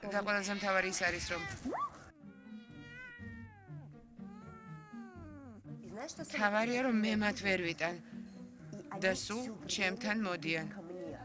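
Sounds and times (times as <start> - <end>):
speech: 0.0 - 2.0, 6.0 - 8.2, 8.9 - 10.8
cat meowing: 0.4 - 5.6.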